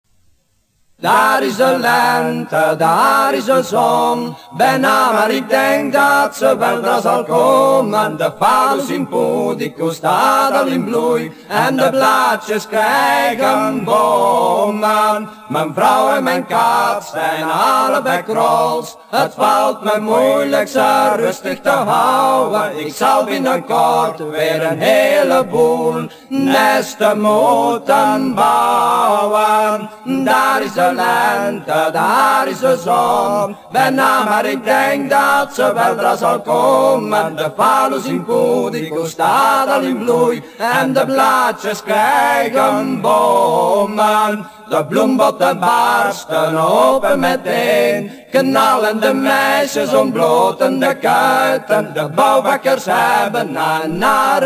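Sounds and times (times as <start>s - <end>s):
folk song: 0.1s - 54.4s.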